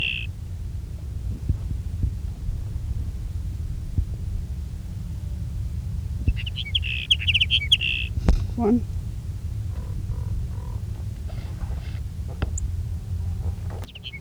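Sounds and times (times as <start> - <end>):
sage sparrow singing: 0.0 - 0.4, 5.8 - 14.2
low rumbling background: 0.0 - 14.2
speech: 8.6 - 9.0.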